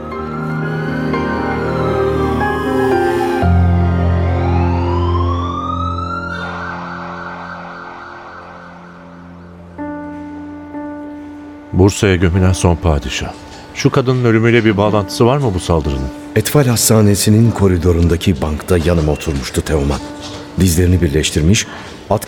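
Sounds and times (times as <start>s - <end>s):
ambulance siren wailing: 0.0s - 10.9s
steady droning background: 0.0s - 11.8s
harsher steadier tone: 2.7s - 10.9s
speech: 11.9s - 22.2s.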